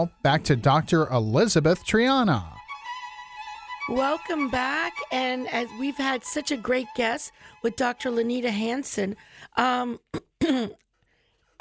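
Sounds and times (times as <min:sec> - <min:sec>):
speech: 0:00.0 - 0:02.6, 0:03.9 - 0:10.8
person clearing throat: 0:10.1 - 0:10.8.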